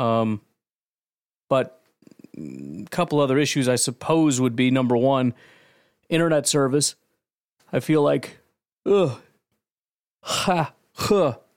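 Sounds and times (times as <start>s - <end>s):
speech: 0.0s - 0.5s, 1.5s - 7.0s, 7.7s - 9.3s, 10.2s - 11.5s
person stifling a yawn: 8.9s - 9.4s, 10.2s - 11.5s.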